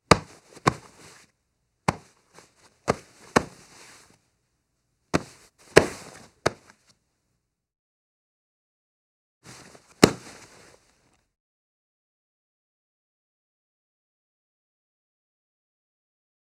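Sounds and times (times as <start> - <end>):
various body grabs and struggle: 0.1 - 1.2, 1.9 - 4.1, 5.2 - 6.8, 9.5 - 10.8.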